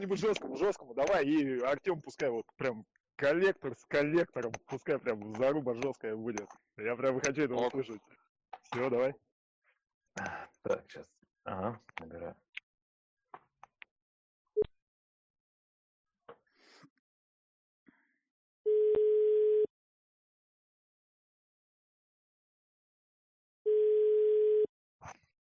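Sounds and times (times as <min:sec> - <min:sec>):
speech: 0:00.0 - 0:09.3, 0:10.2 - 0:12.4
steady mid-pitched telephone line beeps while a call is dialed: 0:18.7 - 0:19.7, 0:23.7 - 0:24.7.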